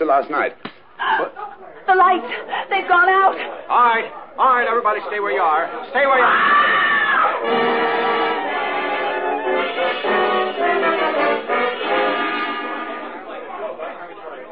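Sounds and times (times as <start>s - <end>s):
speech: 0.0s - 6.8s
crowd of overlapping agitated voices in a hotel lobby: 1.0s - 14.5s
sharp high scream in a hotel lobby: 6.2s - 9.7s.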